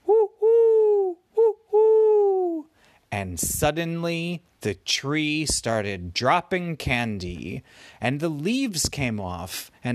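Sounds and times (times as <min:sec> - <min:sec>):
voice imitating an owl's hoot: 0:00.0 - 0:02.8
speech: 0:03.2 - 0:09.9.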